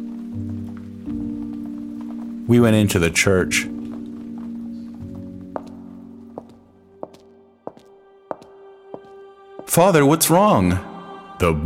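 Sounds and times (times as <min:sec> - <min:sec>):
rain pattering: 0:00.0 - 0:08.5
speech: 0:02.5 - 0:03.8, 0:09.8 - 0:11.6.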